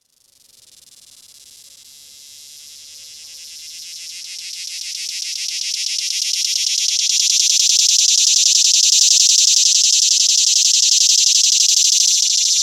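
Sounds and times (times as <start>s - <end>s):
swamp cicada buzzing call: 0.2s - 12.6s.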